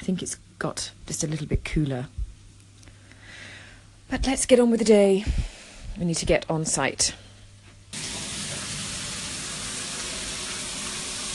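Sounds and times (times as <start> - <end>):
speech: 0.1 - 2.2, 4.1 - 7.2
shower water running: 7.9 - 11.3.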